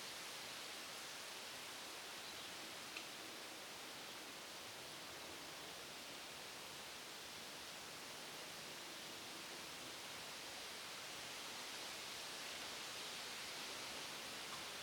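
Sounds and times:
wind rustling through trees on walking trails in Nova Scotia: 0.0s - 14.8s.

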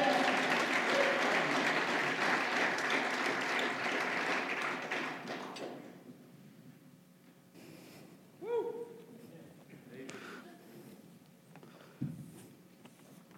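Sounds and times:
church congregation clapping hands in praise during a worship service: 0.0s - 6.0s.

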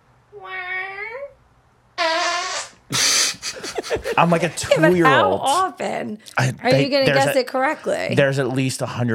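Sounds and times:
fart sounds made with a mouth: 2.0s - 3.4s
laughter: 2.9s - 5.4s
speech: 3.9s - 9.1s.

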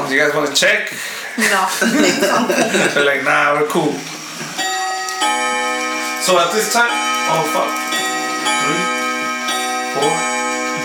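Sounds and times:
speech: 0.1s - 4.1s, 6.2s - 7.8s, 8.5s - 9.0s, 10.0s - 10.3s
laughter: 1.4s - 3.2s
clock chiming five o'clock: 4.5s - 10.8s.

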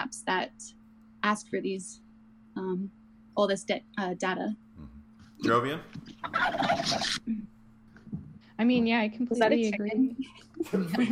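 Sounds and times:
steady low hum: 0.0s - 11.0s
speech: 0.3s - 2.0s, 2.6s - 4.6s, 5.4s - 7.5s, 8.6s - 11.0s
laughter: 5.5s - 7.2s, 9.5s - 11.0s
chicken clucking: 6.1s - 7.2s.

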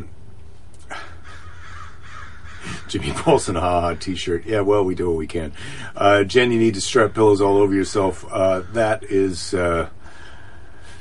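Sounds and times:
low rumble: 0.0s - 10.9s
crows cawing: 0.9s - 4.6s, 7.0s - 9.3s
laughter: 2.6s - 3.6s
speech: 2.9s - 10.0s.

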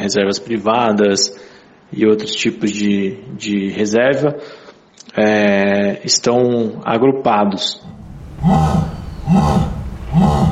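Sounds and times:
speech: 0.0s - 10.3s
jaguar roaring in deep rasping grunts: 7.8s - 10.4s.

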